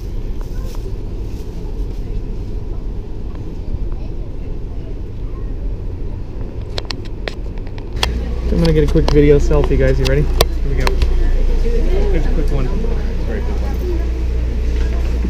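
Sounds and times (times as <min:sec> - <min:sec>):
small two-car train rumbling heard from inside the carriage: 0:00.0 - 0:15.2
brief sharp clicks and rattles: 0:06.4 - 0:11.2
speech: 0:08.7 - 0:11.0, 0:12.4 - 0:12.9.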